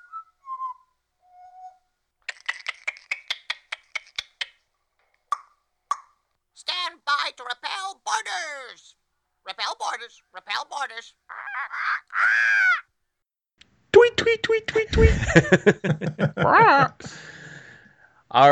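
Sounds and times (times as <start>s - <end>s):
animatronic barker parrot squawking and calling: 2.3s - 4.6s, 6.6s - 12.9s
speech: 10.1s - 12.6s, 14.5s - 17.3s
laughter: 11.3s - 12.8s, 14.7s - 17.1s.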